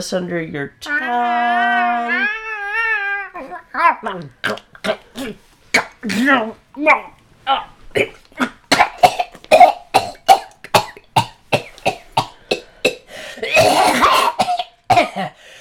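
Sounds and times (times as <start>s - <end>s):
speech: 0.0s - 2.4s, 3.4s - 5.4s, 6.0s - 8.5s
person imitating a cat coughing up a hairball: 4.4s - 6.4s, 8.0s - 15.4s.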